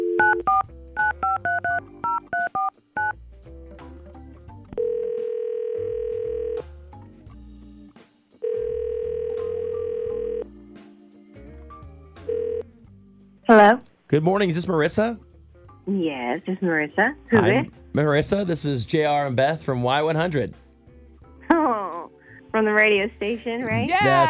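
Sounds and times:
long steady telephone dial tones: 0:00.0 - 0:02.7, 0:04.8 - 0:06.6, 0:08.4 - 0:10.4, 0:12.3 - 0:12.6
telephone touch-tone dialing beeps: 0:00.0 - 0:03.2
speech: 0:13.6 - 0:15.3, 0:16.0 - 0:20.6, 0:22.6 - 0:24.2.

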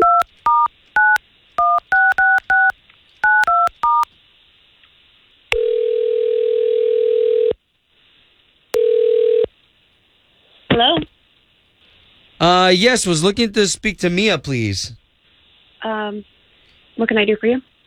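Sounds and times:
telephone keypad tones dialing a phone number: 0:00.0 - 0:04.0
long steady dial tone: 0:05.6 - 0:07.6, 0:08.8 - 0:09.5
speech: 0:12.7 - 0:15.0, 0:16.1 - 0:16.3, 0:17.0 - 0:17.7.

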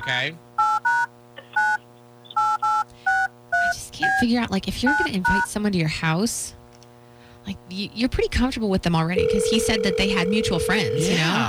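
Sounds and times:
speech: 0:00.0 - 0:00.5, 0:04.0 - 0:06.6, 0:07.4 - 0:11.4
faint steady hum: 0:00.3 - 0:11.4
telephone keypad dialing tones: 0:09.2 - 0:11.4.

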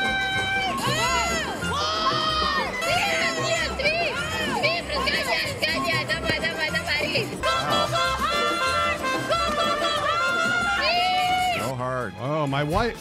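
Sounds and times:
busy crowd in a curling arena: 0:00.0 - 0:11.7
women curling players shouting sweep commands: 0:00.0 - 0:11.7
speech: 0:12.4 - 0:12.9.

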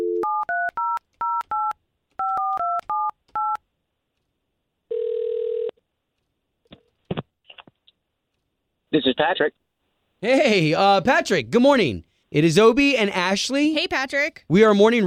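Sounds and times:
telephone ring tone: 0:00.0 - 0:03.6, 0:04.9 - 0:05.7
speech: 0:08.9 - 0:09.6, 0:10.2 - 0:15.0.

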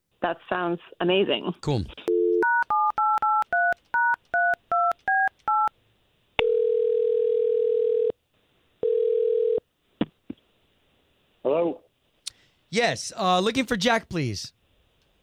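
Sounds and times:
speech: 0:00.2 - 0:02.0, 0:12.8 - 0:14.6
telephone ringing tones: 0:02.1 - 0:05.7, 0:06.4 - 0:08.2, 0:08.8 - 0:09.6.

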